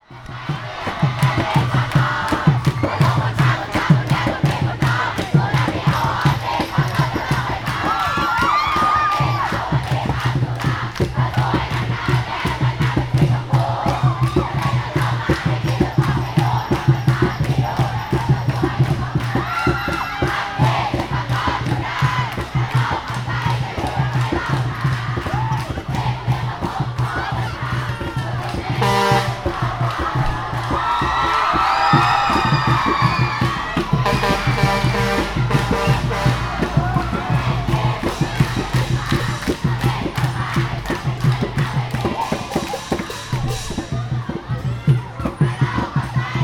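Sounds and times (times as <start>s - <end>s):
street kids in Bangkok Thailand: 0.0s - 46.4s.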